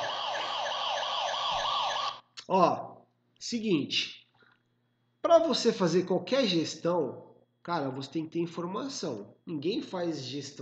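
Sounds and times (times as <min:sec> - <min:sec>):
electronic siren sound effect wailing to wake up listeners: 0:00.0 - 0:02.3
speech: 0:02.5 - 0:04.2, 0:05.2 - 0:10.6.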